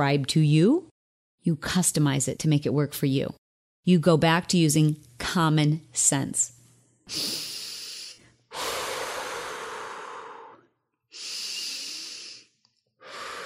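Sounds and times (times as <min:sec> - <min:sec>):
speech: 0:00.0 - 0:07.5
deep breathing: 0:07.1 - 0:13.4.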